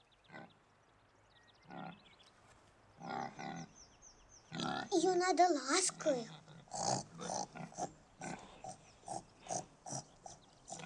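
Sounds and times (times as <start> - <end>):
light bird chirps: 0.0 - 10.8
pig grunting: 3.0 - 3.7, 4.5 - 4.9, 5.9 - 10.8
speech: 4.9 - 7.0.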